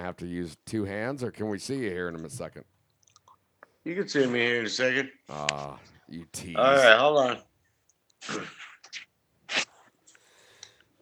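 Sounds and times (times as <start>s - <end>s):
speech: 0.1s - 2.8s, 3.8s - 7.5s, 8.2s - 9.0s
person sneezing: 8.2s - 9.8s.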